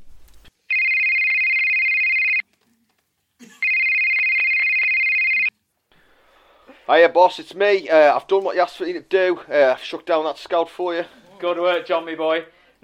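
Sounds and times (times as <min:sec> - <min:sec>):
telephone ringing with electronic trill: 0:00.7 - 0:02.4, 0:03.6 - 0:05.5
speech: 0:06.9 - 0:12.8.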